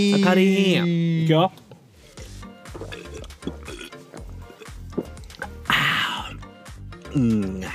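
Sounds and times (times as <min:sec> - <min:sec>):
speech: 0:00.0 - 0:01.6, 0:07.2 - 0:07.7
person gulping a beverage after a toast: 0:02.7 - 0:06.4.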